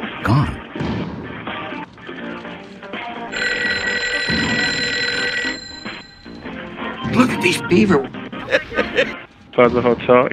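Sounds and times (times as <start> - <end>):
speech: 0.2 - 1.1, 7.4 - 10.3
hotel telephone with bright metallic bell ringing: 3.3 - 8.0
laughter: 8.4 - 9.2.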